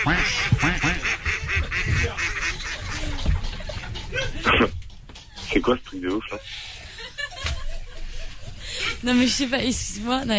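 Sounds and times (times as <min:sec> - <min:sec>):
speech: 0:00.0 - 0:00.7, 0:05.6 - 0:06.7, 0:09.0 - 0:10.3
dense chorus of duck quacking sound effects played from a machine: 0:00.0 - 0:04.9
laughter: 0:00.0 - 0:09.3.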